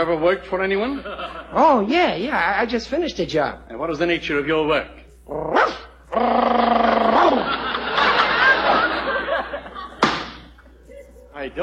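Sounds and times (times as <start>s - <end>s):
speech: 0.0s - 6.5s
laughter: 0.8s - 1.9s, 6.8s - 11.3s
man imitating a barking dog: 5.3s - 7.5s.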